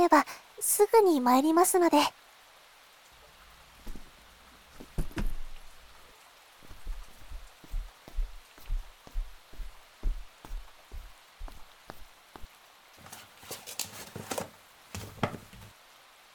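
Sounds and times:
steady rain hissing: 0:00.0 - 0:16.3
speech: 0:00.1 - 0:02.2
low heavy drops thudding on a surface: 0:13.0 - 0:15.8.

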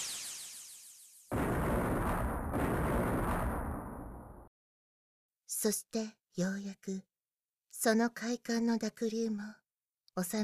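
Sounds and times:
heavy distant explosions: 0:01.3 - 0:04.5
speech: 0:05.6 - 0:07.1, 0:07.8 - 0:10.4.

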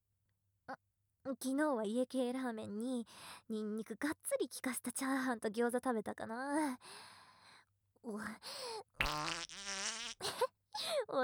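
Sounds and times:
speech: 0:01.3 - 0:07.2, 0:08.0 - 0:11.2
farting: 0:09.0 - 0:10.2.

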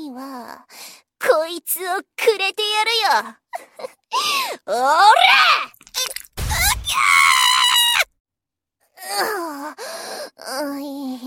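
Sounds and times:
speech: 0:00.2 - 0:05.7, 0:09.0 - 0:11.2
person screaming: 0:05.0 - 0:08.1.

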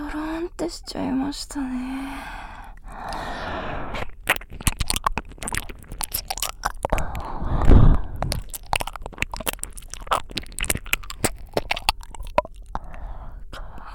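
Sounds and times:
speech: 0:00.1 - 0:02.4
mouth biting and licking a finger: 0:04.0 - 0:13.1.

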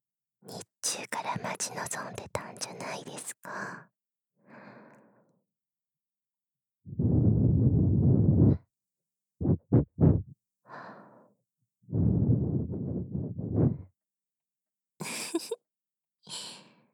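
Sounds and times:
speech: 0:00.5 - 0:04.6
soft blowing into an ear: 0:06.9 - 0:08.6, 0:09.4 - 0:10.4, 0:11.9 - 0:13.9.

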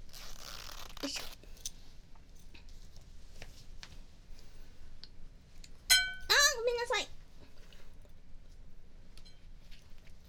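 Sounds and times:
speech: 0:01.0 - 0:01.4
something bumping against a ceramic plate with a clink: 0:05.9 - 0:06.5.

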